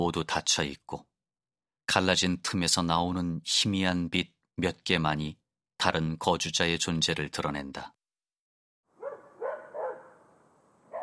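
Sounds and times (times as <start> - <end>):
speech: 0.0 - 1.1, 1.9 - 8.0
dog barking across an open yard: 9.0 - 10.3, 10.9 - 11.0.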